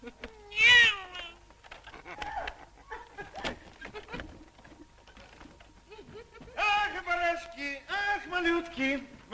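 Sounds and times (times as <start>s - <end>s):
cat meowing: 0.4s - 1.4s
laughter: 1.8s - 7.1s
speech: 8.8s - 9.2s.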